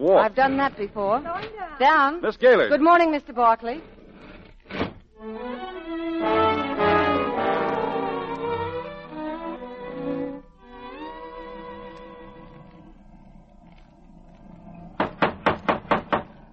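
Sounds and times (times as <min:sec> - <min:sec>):
speech: 0:00.0 - 0:03.9
orchestral music: 0:05.2 - 0:12.5
knocking on the door of a house: 0:15.0 - 0:16.3.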